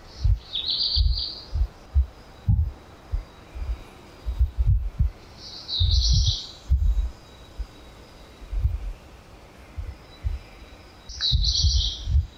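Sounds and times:
black redstart singing in the morning in Brussels: 0:00.0 - 0:09.0, 0:09.8 - 0:12.3
low irregular thumping and rumble: 0:00.2 - 0:00.4, 0:01.0 - 0:05.2, 0:05.8 - 0:07.2, 0:08.5 - 0:09.0, 0:09.8 - 0:10.5, 0:11.3 - 0:12.3.

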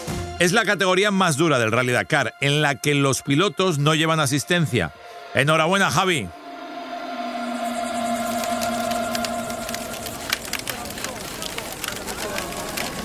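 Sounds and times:
speech: 0:00.4 - 0:06.4
steady hum: 0:05.1 - 0:11.0
firewood crackling in a large bonfire in the Arabian desert: 0:07.2 - 0:13.0.

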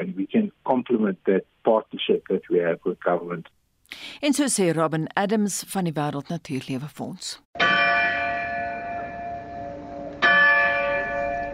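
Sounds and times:
speech: 0:00.0 - 0:07.8
large castle bell ringing: 0:07.6 - 0:11.5.

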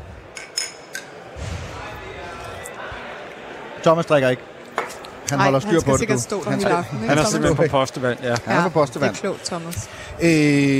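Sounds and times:
low murmur of voices: 0:00.0 - 0:10.7
glasses clinking in a toast celebrating election results: 0:00.4 - 0:01.2
speech: 0:03.8 - 0:04.6, 0:05.3 - 0:10.7.

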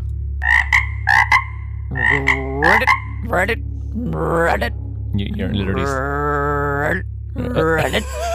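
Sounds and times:
steady low hum: 0:00.0 - 0:08.3
person doing a vocal frog impression: 0:01.9 - 0:04.8, 0:05.5 - 0:08.1
speech: 0:02.1 - 0:08.3
laughter: 0:07.4 - 0:08.3.

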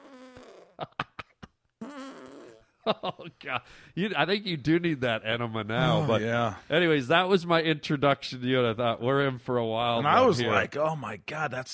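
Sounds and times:
fake fart noise made by squeezing a hand under an armpit: 0:00.0 - 0:00.8, 0:01.8 - 0:02.6
speech: 0:02.9 - 0:11.7.

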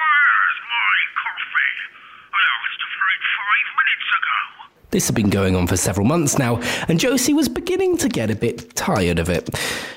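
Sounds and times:
tinny voice talking over a telephone handset: 0:00.0 - 0:06.6
speech: 0:01.6 - 0:09.9.

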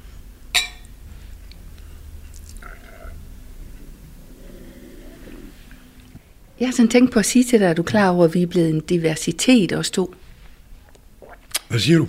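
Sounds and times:
glasses clinking in a toast: 0:00.6 - 0:00.9
speech: 0:06.6 - 0:10.2, 0:11.7 - 0:12.0.

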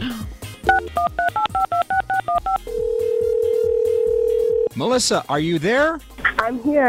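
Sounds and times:
touch-tone beeps of a phone number being dialed: 0:00.7 - 0:04.7
speech: 0:04.8 - 0:06.8.

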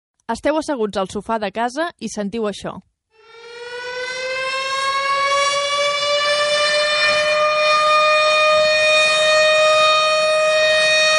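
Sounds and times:
speech: 0:00.3 - 0:02.9
civil defense tornado warning siren wailing: 0:03.2 - 0:11.1.

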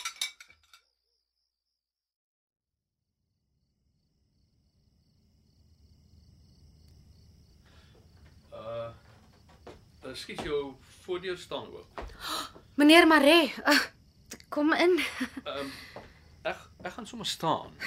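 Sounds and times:
dishes clinking as they are washed up: 0:00.0 - 0:00.8
speech: 0:10.1 - 0:17.8.

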